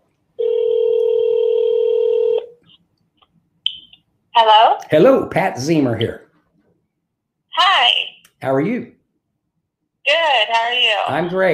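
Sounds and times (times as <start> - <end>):
telephone tone at the start of a phone call: 0.4 - 2.6
speech: 4.4 - 6.2, 8.4 - 9.0, 10.2 - 11.5.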